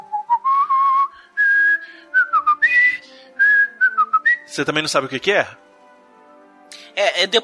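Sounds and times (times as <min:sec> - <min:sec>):
person whistling a wavering, poorly pitched tune: 0:00.0 - 0:04.5
speech: 0:04.6 - 0:05.6, 0:07.0 - 0:07.4.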